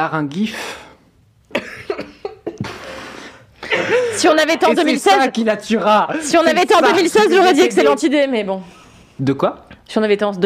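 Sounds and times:
speech: 0.0 - 0.8, 3.8 - 10.4
harsh coughing: 1.5 - 4.3.

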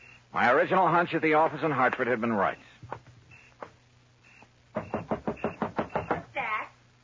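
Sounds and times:
speech: 0.3 - 3.0
knocking on a front door: 4.7 - 6.3.

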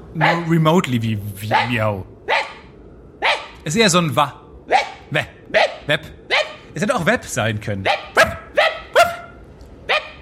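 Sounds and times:
dog barking in short sharp yelps: 0.2 - 0.5, 1.5 - 1.7, 2.3 - 3.6, 4.7 - 6.6, 7.8 - 10.2
speech: 0.2 - 2.2, 3.6 - 8.4.

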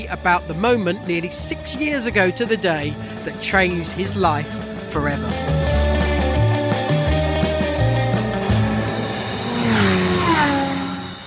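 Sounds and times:
speech: 0.0 - 5.6
racing car engines droning on a racetrack during a track day: 0.0 - 11.2
racing car sweeping past in a whine: 8.1 - 11.2.

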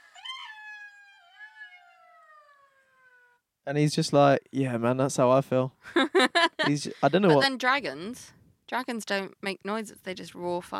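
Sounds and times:
jackal wailing howl: 0.0 - 3.4
speech: 3.7 - 10.7
laughter: 5.9 - 7.5.

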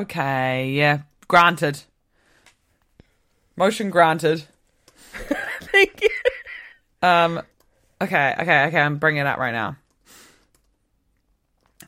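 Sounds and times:
speech: 0.0 - 1.9, 3.6 - 6.1, 7.0 - 9.8
soft keystrokes on a computer keyboard: 9.8 - 11.8.

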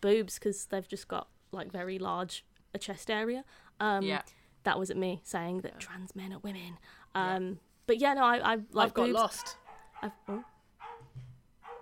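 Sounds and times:
speech: 0.0 - 10.5
dog barking: 9.2 - 11.8.

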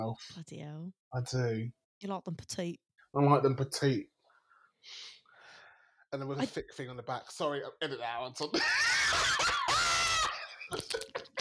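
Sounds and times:
speech: 0.0 - 4.1, 4.8 - 5.2, 6.1 - 9.5, 10.7 - 11.4
person screaming into a microphone: 8.6 - 10.4.

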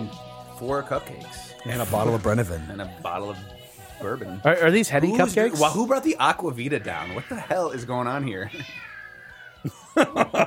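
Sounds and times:
speech: 0.6 - 8.9, 9.6 - 10.4
cats fighting and yowling: 6.8 - 9.7
laughter: 9.6 - 10.4.

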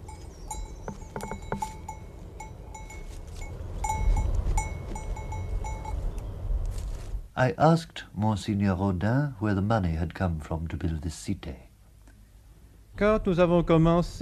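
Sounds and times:
small bells clanking on grazing sheep: 0.0 - 6.2
steady low outdoor rumble: 0.0 - 14.2
speech: 7.4 - 11.6, 13.0 - 14.2.

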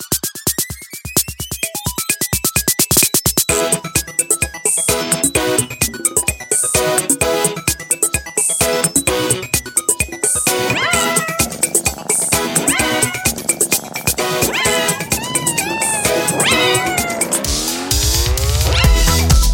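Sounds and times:
bouncy playful music with a steady beat: 0.0 - 19.5
cat meows rising and bending in pitch: 10.6 - 11.7, 12.4 - 13.6, 14.2 - 17.4.

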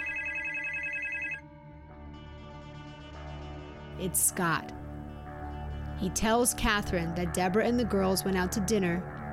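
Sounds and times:
telephone bell ringing: 0.0 - 1.4
speech: 4.0 - 4.8, 6.0 - 9.1.

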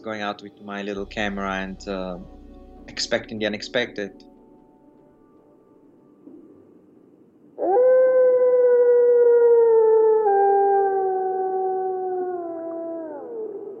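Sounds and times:
speech: 0.0 - 4.3
wolf howling: 7.6 - 13.7.

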